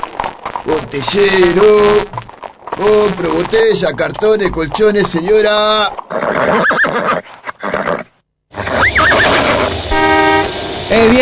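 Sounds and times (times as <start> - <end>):
speech: 0.6 - 2.2, 2.8 - 7.3
balking cart horse whinnying on a city street: 4.6 - 9.8
steady horn-like tone: 9.9 - 11.2.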